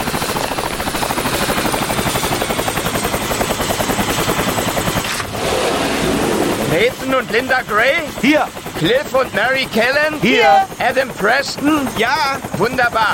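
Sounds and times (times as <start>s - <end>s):
helicopter rotor chop coming in to land on a plateau: 0.0s - 13.1s
helicopter high whine: 5.2s - 7.4s
speech: 6.8s - 13.1s.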